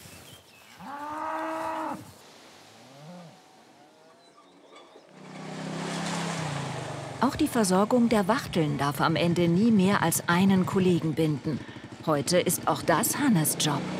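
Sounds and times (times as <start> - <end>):
cattle mooing during an early-summer change of pasture: 0.8 - 2.1, 2.8 - 4.4
speech: 7.2 - 13.9.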